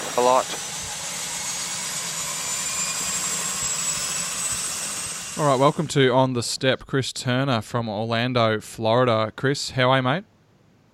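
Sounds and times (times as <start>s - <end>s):
seaplane turbine engine spooling up: 0.0s - 6.6s
speech: 0.2s - 0.7s, 5.4s - 10.3s.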